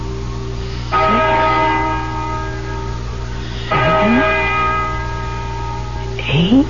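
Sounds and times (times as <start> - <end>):
deep church bell tolling: 0.0 - 6.6.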